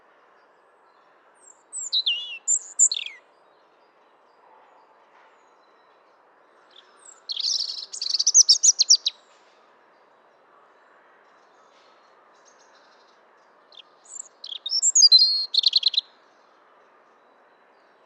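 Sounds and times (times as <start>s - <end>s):
European robin Erithacus rubecula twittering warble: 1.8s - 3.2s, 7.0s - 9.2s, 14.0s - 16.0s.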